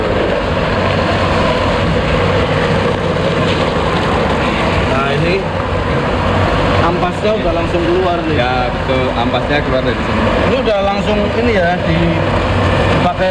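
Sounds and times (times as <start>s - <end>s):
modern soybean grinding machine running: 0.0s - 13.2s
speech: 9.2s - 13.2s.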